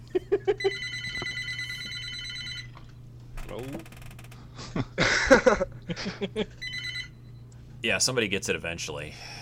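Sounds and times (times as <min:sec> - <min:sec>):
laughter: 0:00.1 - 0:00.8, 0:04.6 - 0:06.6
telephone ringing with electronic tones: 0:00.6 - 0:02.8, 0:06.6 - 0:07.2
speech: 0:06.2 - 0:06.7, 0:07.8 - 0:09.4.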